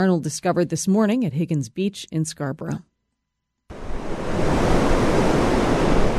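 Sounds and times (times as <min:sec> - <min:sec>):
speech: 0:00.0 - 0:02.9
ocean surf from a hurricane swell breaking at Higgins Beach in Scarborough Maine: 0:03.7 - 0:06.1.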